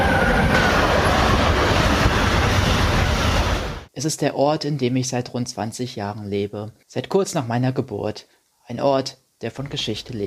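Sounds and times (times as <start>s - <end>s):
train rolling along rails: 0.0s - 3.9s
speech: 4.0s - 10.2s.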